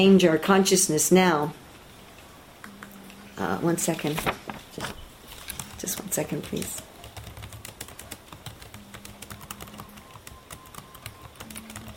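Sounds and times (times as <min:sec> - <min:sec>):
speech: 0:00.0 - 0:01.6, 0:03.4 - 0:05.0, 0:05.8 - 0:06.9
faint hum: 0:00.0 - 0:11.9
typing on a computer keyboard: 0:05.5 - 0:11.9.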